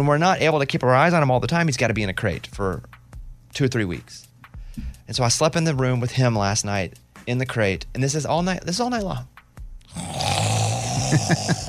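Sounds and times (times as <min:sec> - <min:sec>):
speech: 0:00.0 - 0:02.9, 0:03.5 - 0:09.3, 0:11.1 - 0:11.6
bulldog snoring: 0:09.9 - 0:11.3.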